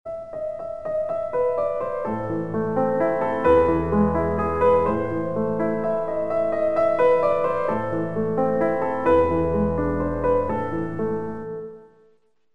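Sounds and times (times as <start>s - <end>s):
piano: 0.0s - 12.5s.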